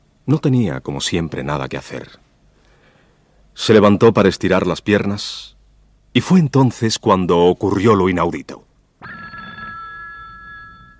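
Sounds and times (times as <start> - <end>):
speech: 0.3 - 2.2, 3.6 - 9.1
old telephone bell ringing with spring loosened with age: 9.0 - 10.9.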